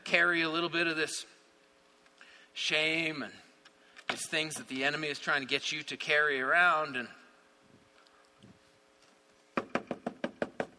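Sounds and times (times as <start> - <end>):
speech: 0.1 - 1.4, 2.6 - 3.4, 4.1 - 7.2
knocking at a door: 9.6 - 10.7.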